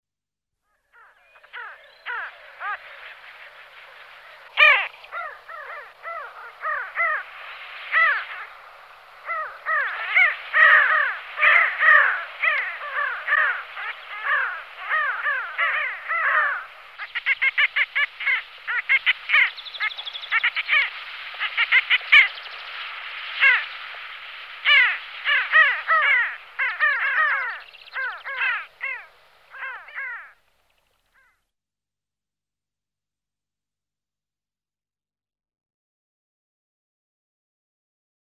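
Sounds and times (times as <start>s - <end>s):
P. alchata sandgrouse calling: 1.0s - 31.4s.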